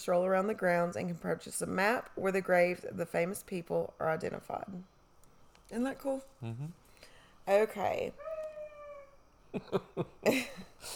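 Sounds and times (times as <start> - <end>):
speech: 0.0 - 4.9, 5.7 - 6.8, 7.4 - 8.3, 9.5 - 10.9
beagle howling outside: 8.2 - 9.2.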